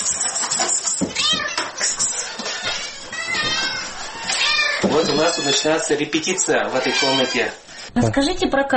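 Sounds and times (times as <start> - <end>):
domestic cat meowing loudly: 1.1 - 7.6
speech: 5.0 - 8.7.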